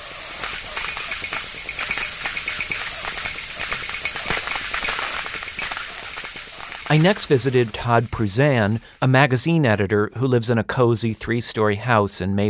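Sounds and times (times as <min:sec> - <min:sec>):
steam radiator hissing: 0:00.0 - 0:09.9
steam radiator ticks and knocks: 0:00.1 - 0:08.1
speech: 0:06.9 - 0:12.4.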